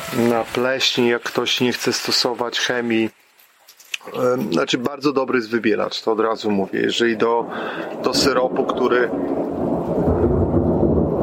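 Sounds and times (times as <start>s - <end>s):
faint rain-like hiss: 0.0s - 11.2s
speech: 0.1s - 3.2s, 4.0s - 10.0s
deep continuous thunder rumbling: 4.2s - 11.2s.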